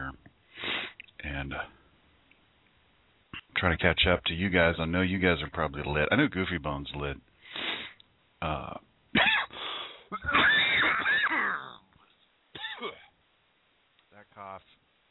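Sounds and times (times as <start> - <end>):
speech: 3.6 - 7.3, 8.4 - 8.8
harsh coughing fit: 9.2 - 11.8, 12.6 - 13.1
throat clearing: 10.1 - 11.8, 12.6 - 13.1.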